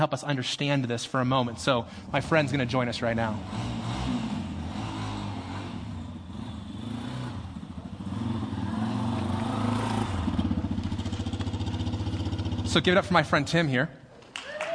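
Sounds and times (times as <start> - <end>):
speech: 0.0 - 4.2, 12.7 - 14.0
motorcycle engine revving on an indoor stage: 1.6 - 13.3.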